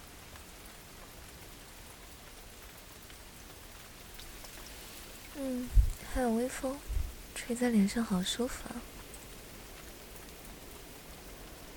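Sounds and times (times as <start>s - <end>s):
steady rain falling: 0.0s - 11.7s
speech: 5.4s - 9.0s.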